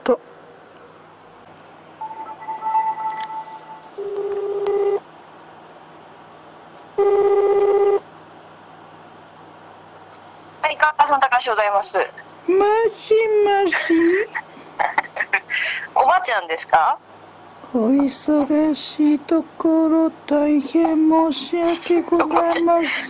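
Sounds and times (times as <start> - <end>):
speech: 0.0 - 0.3, 11.4 - 14.2, 16.2 - 17.0, 17.7 - 23.0
short telephone line beeps: 2.0 - 4.0
outgoing telephone call ringing tone: 2.0 - 5.0, 7.0 - 8.0
laughter: 13.8 - 15.6, 21.6 - 23.0.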